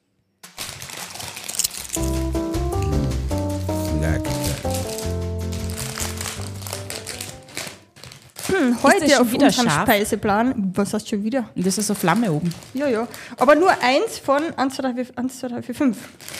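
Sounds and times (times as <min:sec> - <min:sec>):
snack bag rustling and crinkling: 0:00.4 - 0:09.8, 0:11.8 - 0:13.8, 0:16.1 - 0:16.3
speech: 0:08.8 - 0:16.3.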